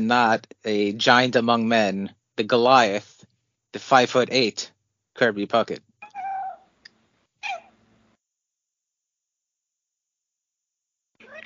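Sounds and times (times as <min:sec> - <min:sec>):
speech: 0:00.0 - 0:05.9
female cat meowing beside the microphone: 0:06.0 - 0:06.6, 0:07.4 - 0:07.7, 0:11.2 - 0:11.4.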